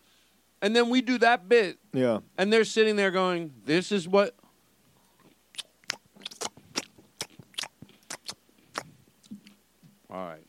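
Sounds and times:
speech: 0.6s - 4.4s, 10.1s - 10.4s
crunchy chewing against the microphone: 4.9s - 9.6s
soft wet mouth sounds: 5.0s - 9.6s.

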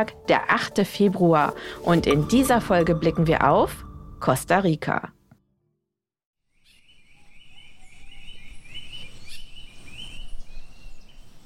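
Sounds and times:
speech: 0.0s - 5.2s
tropical rainforest birds chirping and trilling: 6.5s - 11.4s.

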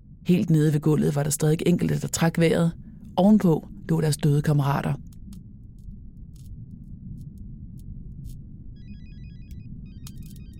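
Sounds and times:
low rumble: 0.0s - 10.5s
speech: 0.3s - 5.1s
sharp clicks and crackles: 5.0s - 8.5s
mobile phone ringtone chirping a quick electronic melody: 8.8s - 10.5s.

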